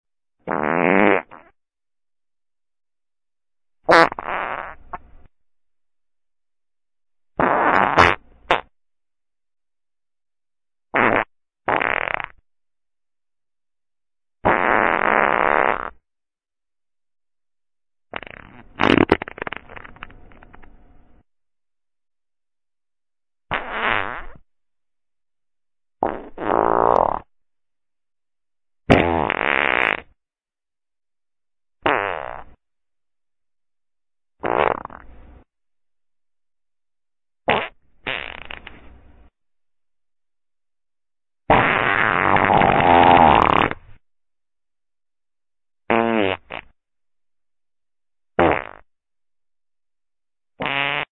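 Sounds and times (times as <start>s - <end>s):
fart: 0.4s - 1.6s, 3.9s - 5.0s, 7.4s - 8.8s, 10.9s - 12.4s, 14.4s - 16.0s, 18.1s - 20.7s, 23.5s - 24.4s, 26.0s - 27.3s, 28.9s - 30.2s, 31.8s - 32.6s, 34.4s - 35.1s, 37.5s - 39.0s, 41.5s - 44.0s, 45.9s - 46.8s, 48.4s - 48.9s, 50.6s - 51.1s.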